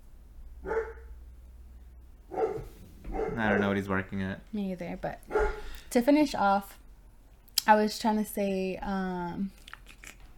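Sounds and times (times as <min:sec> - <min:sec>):
low steady hum: 0:00.0 - 0:10.3
dog barking: 0:00.6 - 0:01.2, 0:02.3 - 0:03.8, 0:05.3 - 0:05.7
speech: 0:03.4 - 0:06.8, 0:07.7 - 0:09.6.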